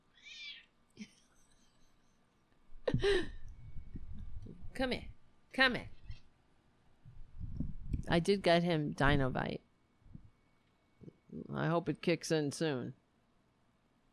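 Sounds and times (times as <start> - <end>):
cat meowing: 0.2 - 0.6
speech: 3.0 - 3.4, 4.8 - 6.0, 8.1 - 9.6, 11.6 - 13.0.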